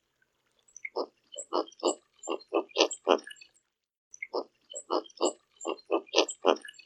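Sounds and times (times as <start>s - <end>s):
Roseate spoonbill giving low husky grunts: 0.9s - 3.3s, 4.2s - 6.8s.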